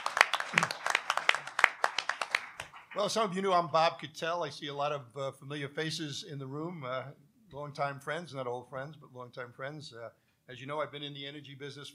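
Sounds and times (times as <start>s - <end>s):
audience applause in a room: 0.0s - 3.2s
speech: 3.0s - 11.9s.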